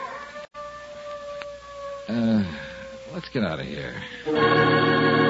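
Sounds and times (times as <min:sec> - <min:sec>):
dog howling: 0:00.0 - 0:03.2
speech: 0:02.1 - 0:05.2.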